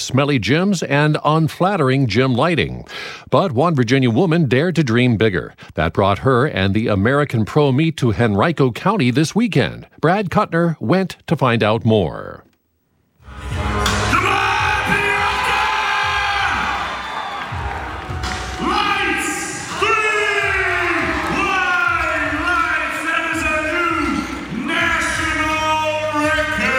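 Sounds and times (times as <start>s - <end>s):
speech: 0.0s - 12.5s
crowd cheering and whooping at a powerlifting meet: 13.9s - 26.0s
powerlifter yelling at a record lift: 14.1s - 16.9s, 18.5s - 26.7s.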